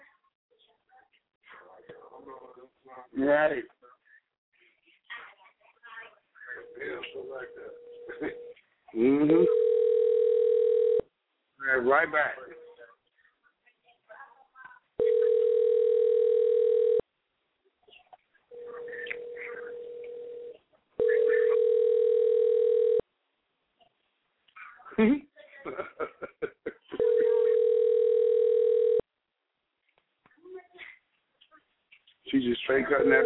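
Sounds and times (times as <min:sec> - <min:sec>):
speech: 0:01.8 - 0:03.8, 0:06.8 - 0:09.6, 0:11.7 - 0:12.5, 0:25.0 - 0:25.9, 0:32.4 - 0:33.2
telephone ringback tone from an outgoing call ringing out before voicemail: 0:09.4 - 0:11.0, 0:15.0 - 0:17.0, 0:18.5 - 0:23.0, 0:27.0 - 0:29.0, 0:32.9 - 0:33.2
laughter: 0:25.1 - 0:27.1.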